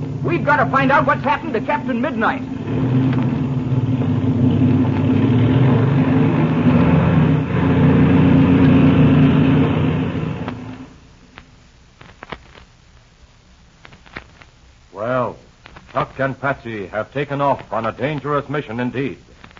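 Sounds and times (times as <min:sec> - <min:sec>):
airplane engine droning while warming up and taxiing: 0:00.0 - 0:11.2
rising-and-falling whine: 0:00.0 - 0:11.2
speech: 0:00.2 - 0:03.2, 0:16.2 - 0:19.3.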